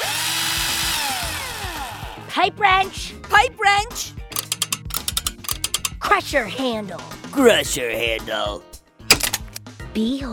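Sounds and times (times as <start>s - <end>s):
power drill whirring: 0.0s - 2.1s
speech: 2.4s - 4.2s, 6.0s - 8.7s, 10.0s - 10.3s.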